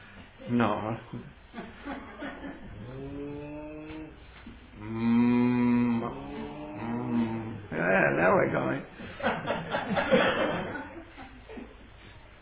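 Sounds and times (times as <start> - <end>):
speech: 0.5 - 2.0
laughter: 1.5 - 2.9, 9.0 - 11.9
short vocal sounds: 2.7 - 7.8
person imitating cow mooing: 2.8 - 7.8.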